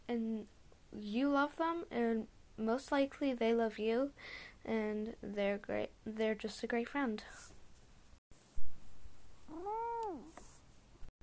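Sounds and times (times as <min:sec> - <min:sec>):
speech: 0:00.1 - 0:07.5
cat meowing: 0:09.5 - 0:10.3.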